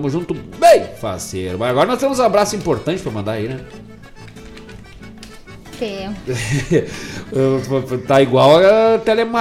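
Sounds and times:
speech: 0:00.0 - 0:03.9, 0:05.8 - 0:09.4
keyboard keys clicking from typing: 0:02.4 - 0:05.6
laughter: 0:06.2 - 0:08.7.

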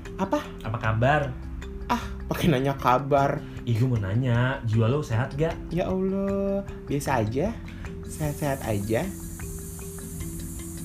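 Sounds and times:
speech: 0:00.2 - 0:09.2
person hissing in imitation of a snake: 0:08.0 - 0:10.8.

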